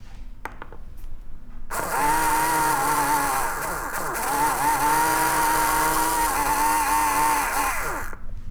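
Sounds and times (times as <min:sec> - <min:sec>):
small motor: 0:01.7 - 0:08.2.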